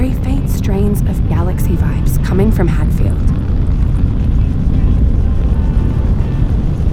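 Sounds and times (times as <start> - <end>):
space plane engines roaring during launch: 0.0 - 6.9
speech: 2.5 - 3.3.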